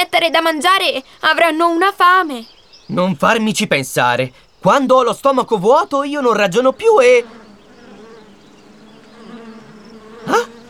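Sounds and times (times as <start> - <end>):
speech: 0.2 - 7.4, 10.3 - 10.5
dense swarm of bees buzzing: 5.9 - 10.6.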